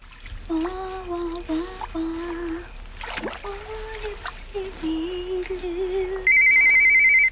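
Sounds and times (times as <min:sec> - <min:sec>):
watery splashing: 0:00.0 - 0:06.8
tonal humming: 0:00.4 - 0:07.2
cordless phone ringing: 0:06.3 - 0:07.2.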